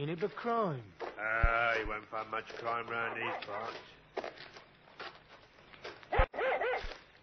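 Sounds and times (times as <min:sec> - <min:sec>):
speech: 0:00.0 - 0:04.5
dog barking excitedly: 0:03.0 - 0:03.8, 0:06.1 - 0:07.0.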